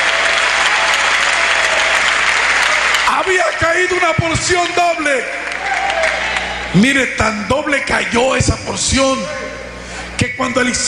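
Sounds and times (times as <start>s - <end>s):
audience applauding: 0.0s - 4.0s, 5.4s - 6.7s
speech: 3.3s - 5.7s, 6.7s - 9.6s, 10.4s - 10.8s.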